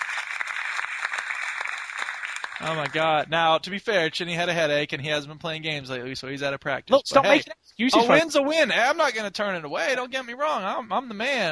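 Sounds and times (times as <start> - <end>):
applause of many hands clapping: 0.0 - 3.2
speech: 2.6 - 11.5.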